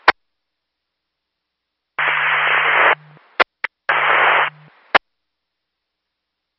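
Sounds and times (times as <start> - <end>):
harsh hissing radio static: 2.0 - 5.0
low hum: 2.0 - 5.0
sharp transmitter clicks: 2.0 - 5.0.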